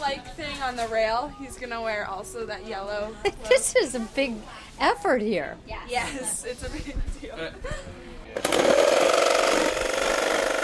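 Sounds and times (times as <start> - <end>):
speech: 0.0 - 8.7
power tool running with a rattling whine: 8.4 - 10.6.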